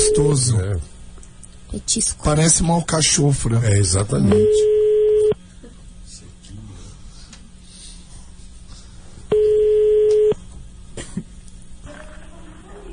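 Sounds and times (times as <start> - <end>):
telephone busy tone beeps after hang-up: 0.0 - 0.4, 4.4 - 5.4, 9.3 - 10.4
speech: 0.2 - 0.9, 1.7 - 4.8
quiet hissing phone line: 4.3 - 5.4, 9.3 - 10.4.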